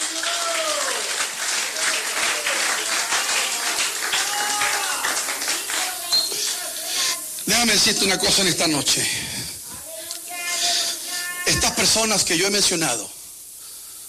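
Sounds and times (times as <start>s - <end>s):
large group applauding: 0.0s - 6.8s
voices calling and cheering: 0.0s - 8.8s, 9.6s - 12.4s
speech: 7.6s - 9.4s, 11.8s - 13.2s.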